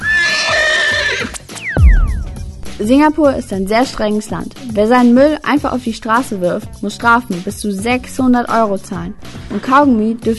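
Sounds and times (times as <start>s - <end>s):
horse whinnying and neighing: 0.0s - 1.5s, 9.5s - 9.9s
speech: 2.8s - 10.3s.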